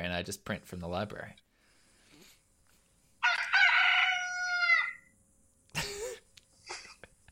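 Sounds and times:
speech: 0.1 - 1.5
rooster crowing: 3.2 - 5.1.

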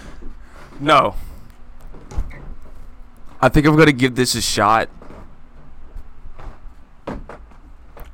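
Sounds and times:
speech: 0.8 - 1.3, 3.4 - 5.0
wooden chair falling apart rattling and creaking: 1.8 - 3.4, 4.9 - 8.1.

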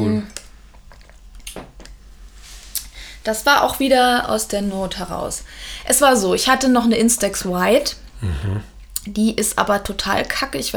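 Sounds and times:
person chewing sushi: 0.3 - 2.0
speech: 3.2 - 10.7.

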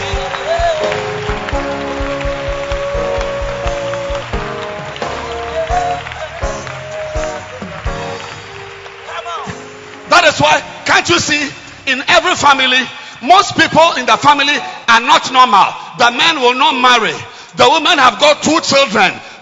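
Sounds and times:
audience clapping hands: 0.0 - 12.4
speech: 10.4 - 19.4.

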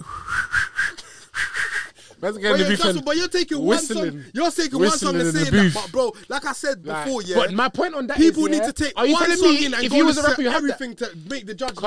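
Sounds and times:
person whistling a short melodic tune: 0.0 - 2.0
speech: 2.2 - 11.8.

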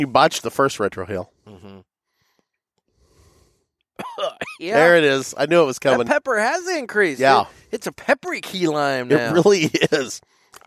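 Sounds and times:
speech: 0.0 - 1.6, 4.2 - 10.6
person coughing after exhaling cigar smoke: 4.0 - 4.8
laughter: 4.6 - 6.6, 8.8 - 10.2.

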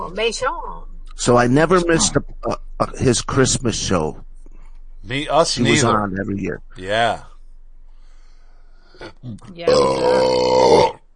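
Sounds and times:
speech: 0.1 - 4.2, 5.0 - 7.3, 9.0 - 11.0
brief mumbled vocal sounds: 1.2 - 4.2, 5.1 - 7.3, 9.0 - 11.0
loud drawn-out burp: 9.0 - 11.1.

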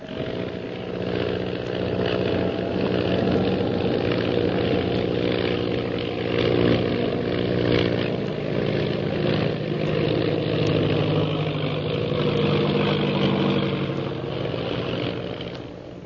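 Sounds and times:
propeller airplane engine droning during stunt flying: 0.0 - 16.0.

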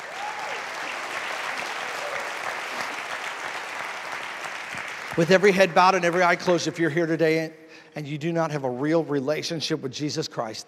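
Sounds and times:
faint cheer: 0.0 - 4.1
audience clapping hands in praise: 0.0 - 7.0
speech: 5.2 - 10.6.

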